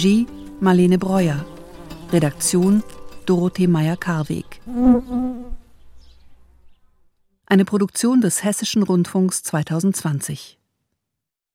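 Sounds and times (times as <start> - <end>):
speech: 0.0 - 1.5, 2.1 - 5.6, 7.5 - 10.6
insect buzzing: 0.2 - 3.3, 4.5 - 5.9.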